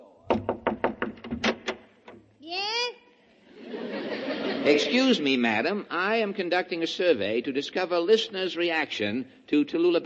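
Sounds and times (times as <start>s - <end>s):
knuckles knocking on a door: 0.3s - 2.2s
laughter: 3.4s - 5.3s
speech: 4.6s - 10.0s.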